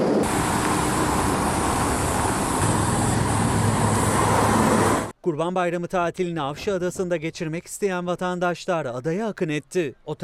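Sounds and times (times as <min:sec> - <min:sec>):
traffic jam of idling and slowly moving vehicles in Muğla Turkey: 0:00.1 - 0:05.1
speech: 0:05.3 - 0:10.2.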